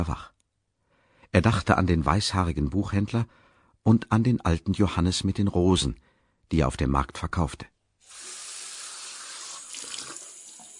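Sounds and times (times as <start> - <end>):
speech: 0.0 - 0.3, 1.3 - 7.7
water running from a bathroom tap: 8.1 - 10.7.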